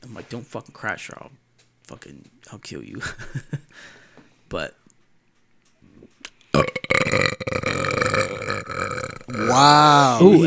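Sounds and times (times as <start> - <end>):
speech: 0.1 - 4.8, 9.3 - 10.4
brief quiet breath: 3.7 - 4.5
long loud rumbling gravelly burp: 6.6 - 10.4.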